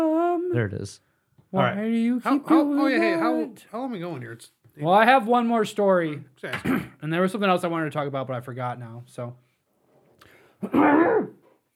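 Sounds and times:
speech: 0:00.5 - 0:09.4, 0:10.6 - 0:11.4
throat clearing: 0:06.5 - 0:07.0, 0:10.6 - 0:11.4.

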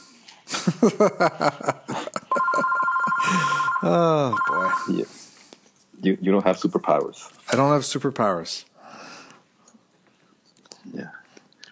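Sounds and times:
voices or laughter: 0:00.5 - 0:04.3
speech: 0:00.7 - 0:01.9, 0:03.3 - 0:05.2, 0:06.0 - 0:08.7
telephone ringing with a buzzing electronic tone: 0:02.3 - 0:05.0.

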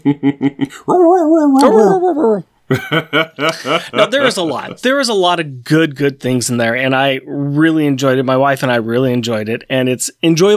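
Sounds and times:
laughter: 0:00.0 - 0:04.8
speech: 0:00.0 - 0:10.5
dog whimpering: 0:00.8 - 0:02.5.

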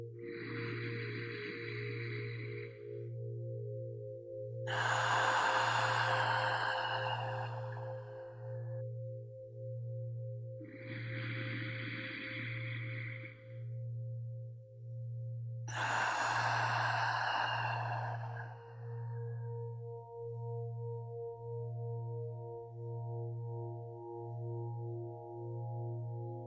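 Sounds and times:
slow deep breathing in through the nose and out through the mouth: 0:00.0 - 0:09.4, 0:10.1 - 0:21.2
steady low humming drone: 0:00.0 - 0:26.4.

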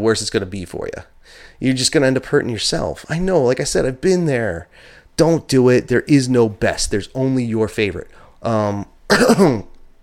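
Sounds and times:
speech: 0:00.0 - 0:09.7
single dry raspy cough from a person: 0:09.1 - 0:09.8.

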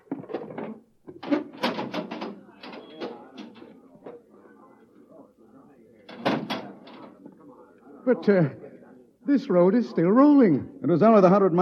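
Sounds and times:
heavy manhole access door being opened with clanks and scraping thuds: 0:01.2 - 0:03.6, 0:06.1 - 0:07.0
speech: 0:08.1 - 0:08.6, 0:09.3 - 0:11.5.

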